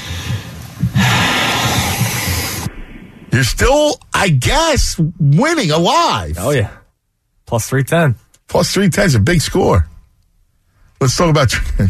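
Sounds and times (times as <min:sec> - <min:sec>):
faint breathing heard over a phone call: 0:00.0 - 0:02.7, 0:10.5 - 0:11.0
broadband hiss: 0:00.0 - 0:03.8
low rumble: 0:00.0 - 0:03.8
speech: 0:03.4 - 0:06.8, 0:07.5 - 0:09.9, 0:11.0 - 0:11.8.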